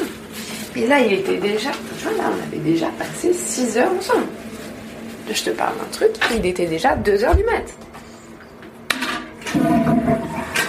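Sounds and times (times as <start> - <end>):
speech: 0.8 - 4.5, 5.3 - 7.9
toilet flushing: 9.2 - 10.6
toilet flush click: 9.4 - 10.6.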